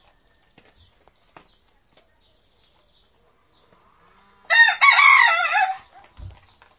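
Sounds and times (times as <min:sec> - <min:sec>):
rooster crowing: 0:04.4 - 0:06.0.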